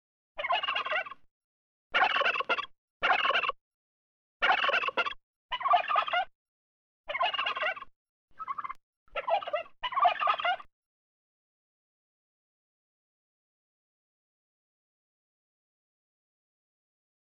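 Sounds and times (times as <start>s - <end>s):
turkey: 0.4s - 1.3s, 2.0s - 3.6s, 4.4s - 6.3s, 7.1s - 10.7s.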